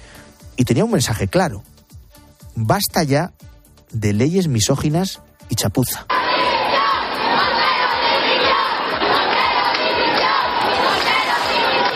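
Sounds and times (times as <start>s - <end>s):
speech: 0.6s - 1.7s, 2.6s - 6.1s
large protest crowd chanting in unison in central Madrid: 6.1s - 11.9s.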